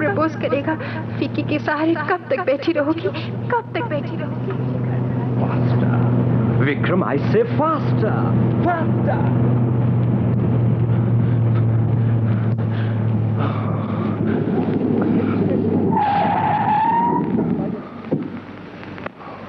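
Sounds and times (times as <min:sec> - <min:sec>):
car engine roaring at high speed: 0:00.0 - 0:19.4
speech: 0:00.2 - 0:04.8, 0:06.6 - 0:09.7
car tires screeching in a long skid: 0:05.5 - 0:18.4.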